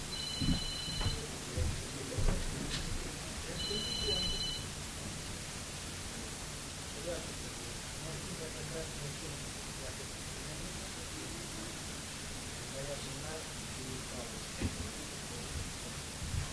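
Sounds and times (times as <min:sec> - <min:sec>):
hiss: 0:00.0 - 0:16.5
telephone ringing with shrill electronic trills: 0:00.1 - 0:01.3, 0:03.6 - 0:04.7
soft low thumps: 0:00.3 - 0:03.1.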